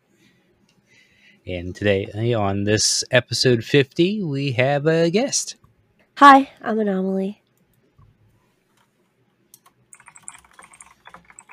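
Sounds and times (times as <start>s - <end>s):
speech: 1.4s - 5.6s, 6.2s - 7.4s
keyboard typing: 9.5s - 11.5s.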